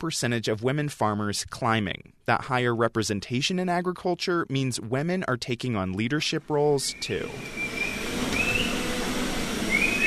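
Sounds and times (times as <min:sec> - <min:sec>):
speech: 0:00.0 - 0:07.8
people whistling at black and white dairy cows in a milking parlor: 0:07.0 - 0:08.8, 0:09.7 - 0:10.0.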